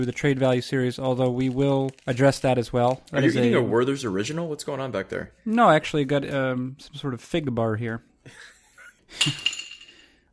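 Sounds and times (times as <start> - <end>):
speech: 0.0 - 8.5, 9.1 - 9.6
piece of hard bone dropped by dog clattering onto a hard floor: 9.2 - 10.1.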